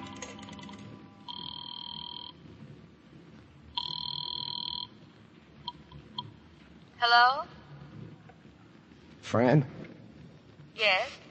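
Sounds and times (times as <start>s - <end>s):
telephone ringback tones from a phone booth call: 0.0s - 2.4s, 3.8s - 4.9s
speech: 7.0s - 7.6s, 9.2s - 9.8s, 10.8s - 11.2s.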